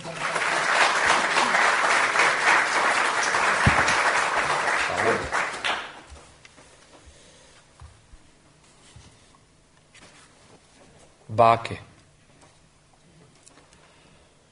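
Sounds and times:
audience applause: 0.0 - 6.1
speech: 11.4 - 11.9.

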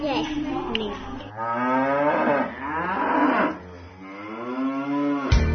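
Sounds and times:
speech: 0.2 - 2.5
cow mooing: 1.3 - 5.4.

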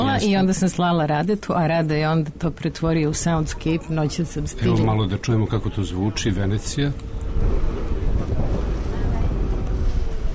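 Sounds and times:
speech: 0.2 - 7.7
boat moving through water in Venice: 2.9 - 10.3
strong wind roaring across the microphone: 6.6 - 10.3.

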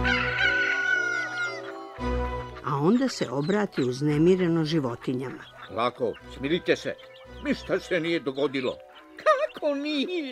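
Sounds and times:
rooster crowing: 0.0 - 2.0
speech: 2.8 - 10.3.

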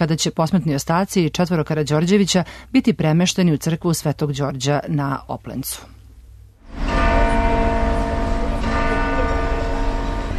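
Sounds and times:
speech: 0.0 - 6.0
cathedral church bells tolling for a procession bearing royal remains: 6.7 - 10.3.

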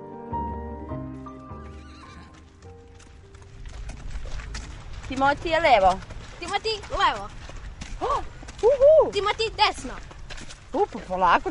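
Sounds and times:
horse hooves clip-clopping on a hard surface: 1.1 - 11.5
horse whinnying: 1.5 - 2.6
speech: 5.1 - 7.4, 8.0 - 10.1, 10.7 - 11.5.

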